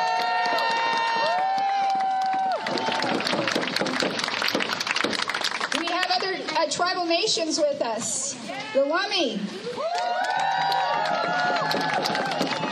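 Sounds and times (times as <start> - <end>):
crowd cheering and whooping: 0.0 - 3.8, 9.6 - 12.7
crowd applauding: 0.0 - 6.6, 9.8 - 12.7
speech: 6.7 - 9.6.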